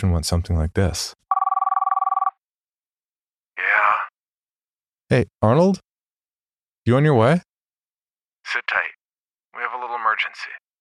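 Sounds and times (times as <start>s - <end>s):
speech: 0.0s - 1.2s, 5.1s - 5.9s, 6.8s - 7.5s, 8.4s - 8.8s, 10.2s - 10.6s
telephone ringing with electronic warble: 1.3s - 2.4s.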